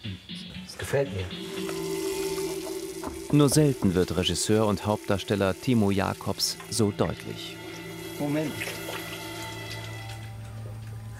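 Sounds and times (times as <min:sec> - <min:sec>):
speech: 0:00.1 - 0:01.8, 0:03.0 - 0:07.6, 0:08.2 - 0:08.9
water running from a tap while hands are washed: 0:01.4 - 0:10.3.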